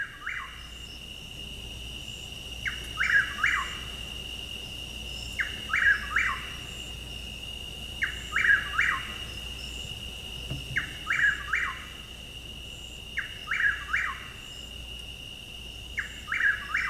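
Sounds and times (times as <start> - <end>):
chuck-will's-widow calling: 0.0 - 1.0, 2.6 - 4.0, 5.1 - 6.9, 8.0 - 12.1, 12.7 - 14.7, 15.9 - 16.8
high droning chorus of night insects: 0.0 - 16.8.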